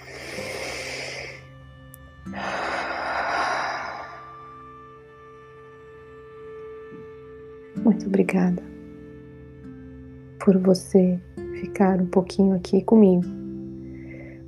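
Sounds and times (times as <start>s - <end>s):
slow deep inhale and exhale: 0.0s - 1.6s, 2.3s - 4.6s, 13.8s - 14.4s
speech: 7.9s - 8.7s, 10.4s - 13.4s.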